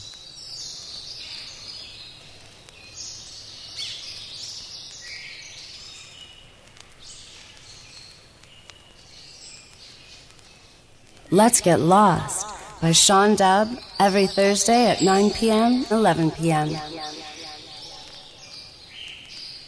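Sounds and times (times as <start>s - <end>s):
speech: 11.3s - 17.2s
outdoor chorus of birds chirping and twittering: 11.3s - 18.6s.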